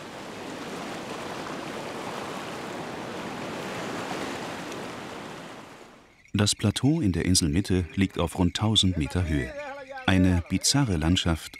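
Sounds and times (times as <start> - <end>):
waves surging into natural sea pools between rocks of an island coast: 0.0 - 6.0
speech: 6.4 - 11.5.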